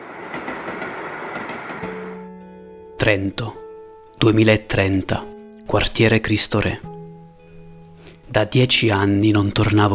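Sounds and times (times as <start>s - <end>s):
train wheels clickety-clack: 0.0s - 1.9s
train passing on rails: 0.0s - 2.2s
speech: 3.0s - 3.6s, 4.2s - 6.9s, 8.3s - 9.9s.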